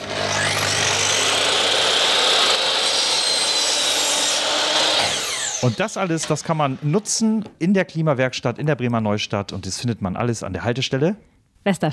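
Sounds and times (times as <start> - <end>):
power saw cutting scrap wood: 0.0 - 7.2
speech: 5.6 - 11.9.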